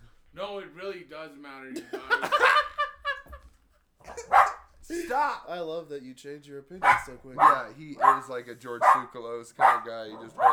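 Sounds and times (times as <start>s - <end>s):
speech: 0.8s - 2.7s, 4.9s - 10.5s
laughter: 1.7s - 5.4s, 6.8s - 10.5s
dog barking: 4.0s - 4.8s, 6.8s - 10.5s.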